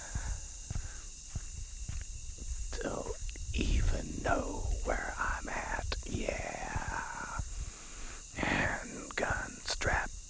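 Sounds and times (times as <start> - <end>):
constant faint hiss: 0.0 - 10.2
slow footsteps crunching on the ground: 0.1 - 9.5.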